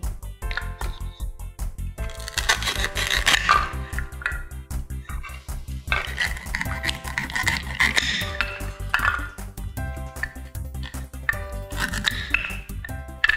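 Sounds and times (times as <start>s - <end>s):
steady music: 0.0s - 13.3s
knife chopping through ingredients: 2.0s - 4.5s, 5.4s - 9.5s, 10.1s - 13.3s.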